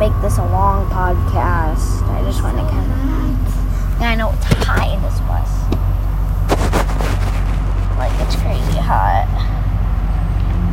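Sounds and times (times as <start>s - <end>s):
bus engine rumble heard inside a bus: 0.0s - 10.7s
speech: 0.1s - 5.7s, 8.0s - 9.6s.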